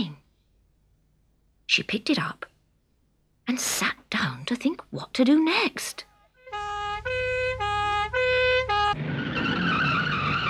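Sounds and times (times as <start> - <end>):
speech: 1.7 - 2.5, 3.5 - 6.1
fire engine tires squealing: 6.5 - 10.4
fire engine skidding and grinding to a halt: 6.7 - 10.4.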